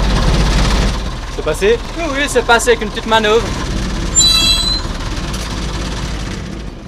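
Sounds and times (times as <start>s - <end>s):
heavy 1957 military truck engine roaring and rattling: 0.0s - 6.8s
speech: 1.4s - 3.8s
brief high metallic squeal: 4.1s - 5.1s.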